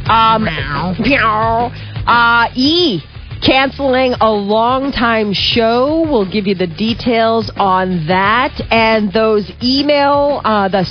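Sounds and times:
speech: 0.1 - 10.9
person playfully imitating a cat's meow: 0.2 - 1.7.

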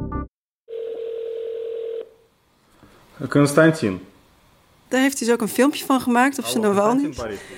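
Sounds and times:
telephone dial tone as a call is placed: 0.7 - 2.1
speech: 3.2 - 4.1, 4.9 - 7.5.

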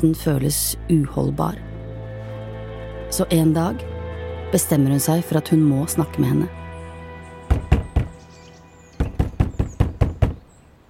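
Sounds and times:
speech: 0.0 - 1.7, 3.1 - 3.9, 4.5 - 6.6
faint birdsong: 5.6 - 10.8
woman knocking on a door: 7.5 - 8.2, 9.0 - 10.4.

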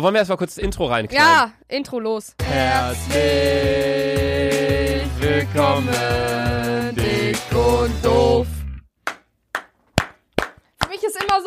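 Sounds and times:
speech: 0.0 - 8.6
hosts clapping hands: 9.0 - 11.4.

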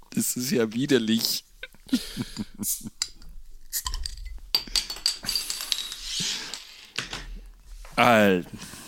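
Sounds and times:
speech: 0.2 - 3.0, 8.0 - 8.8
glass beer bottle clinking: 2.4 - 6.8.

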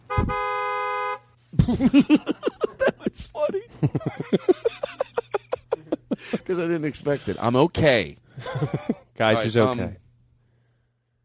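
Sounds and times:
car horn blast: 0.0 - 1.3
laughter: 1.6 - 7.4, 8.4 - 9.2
speech: 1.7 - 2.3, 6.5 - 10.0.

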